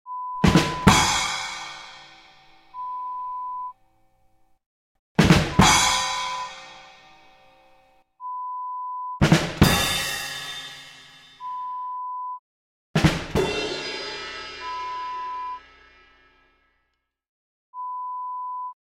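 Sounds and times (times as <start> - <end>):
comedy drum rolls: 0.4 - 2.2, 5.2 - 7.0, 9.2 - 11.1, 13.0 - 15.5.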